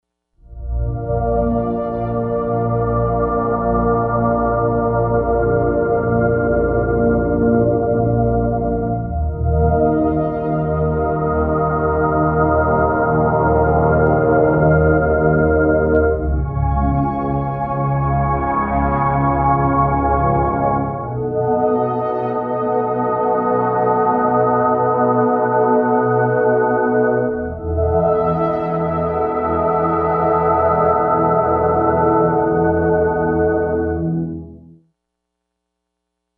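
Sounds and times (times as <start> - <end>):
slow choir on a digital synthesizer: 0.4 - 34.6.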